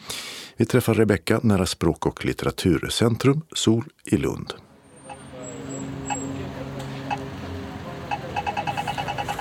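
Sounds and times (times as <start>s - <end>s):
speech: 0.6s - 4.6s
street traffic rumbling near a language and literature centre in Lund Sweden: 4.7s - 9.4s
quick rhythmic ticking: 8.0s - 9.4s.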